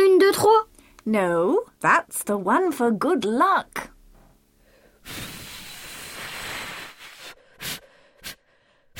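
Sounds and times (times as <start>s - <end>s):
speech: 0.4s - 3.9s, 5.0s - 5.4s
breath blowing out birthday candles on a chocolate cake: 5.0s - 8.4s
short sharp puffs of breath: 5.0s - 8.9s.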